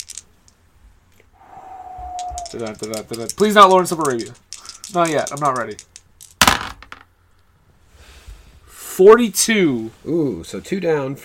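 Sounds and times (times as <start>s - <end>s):
dice clattering: 0.0s - 0.3s, 2.2s - 7.1s
faint steady tone: 1.2s - 2.7s
speech: 2.5s - 5.9s, 9.0s - 11.2s.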